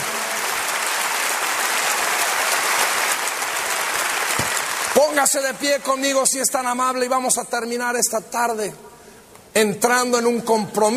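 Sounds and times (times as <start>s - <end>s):
large audience applauding: 0.0s - 5.5s
speech: 5.2s - 9.0s, 9.6s - 10.9s.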